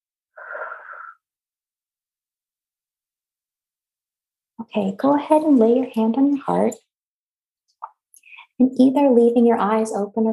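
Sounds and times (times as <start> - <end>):
airy slightly wheezy deep breath during a guided tapping exercise: 0.4 - 1.3
speech: 4.6 - 6.8, 8.6 - 10.3.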